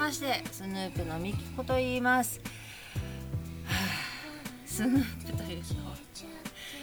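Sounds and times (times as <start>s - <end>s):
quiet steady hum of tones: 0.0s - 6.8s
speech: 0.1s - 3.1s, 4.8s - 6.5s
person yawning: 3.7s - 5.2s.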